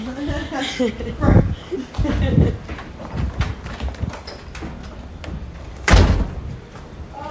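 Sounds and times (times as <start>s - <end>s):
person chuckling: 0.0s - 2.7s
speech: 0.5s - 2.7s
doors being slid and shut with solid thuds and rattling bumps: 3.1s - 6.7s.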